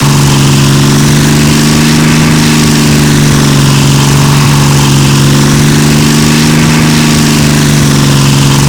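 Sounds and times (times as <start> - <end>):
large V12 diesel engines: 0.0 - 8.6.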